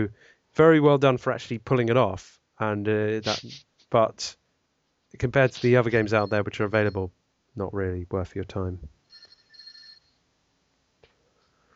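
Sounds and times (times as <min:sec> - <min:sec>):
speech: 0:00.0 - 0:04.4, 0:05.1 - 0:09.0
telephone ringing: 0:05.5 - 0:07.1, 0:09.1 - 0:10.2.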